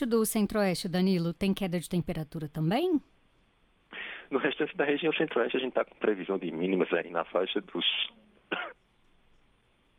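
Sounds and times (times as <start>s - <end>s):
speech: 0.0s - 3.1s, 4.3s - 8.8s
short cough: 8.5s - 8.8s.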